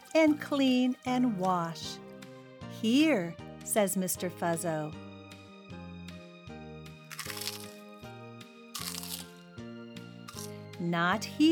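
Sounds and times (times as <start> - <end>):
speech: 0.2 - 2.0, 2.8 - 5.1, 10.8 - 11.5
crunching and munching crisp food: 7.0 - 8.0, 8.7 - 9.5, 10.2 - 10.6.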